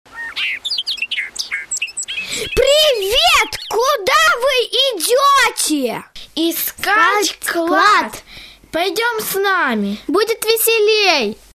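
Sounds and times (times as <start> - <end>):
birds singing with chirps and warbling trills: 0.1 - 4.4
speech: 2.4 - 11.4.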